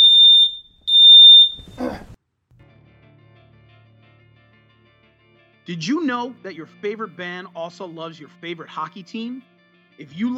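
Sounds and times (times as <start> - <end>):
fire alarm blaring high-pitched tones: 0.0 - 1.8
speech: 5.7 - 10.3.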